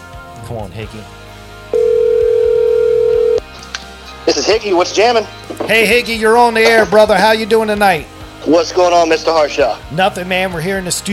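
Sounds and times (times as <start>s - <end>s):
speech: 0.4s - 1.2s, 4.3s - 11.1s
electronic phone line ring tone on a radio call: 1.7s - 3.4s.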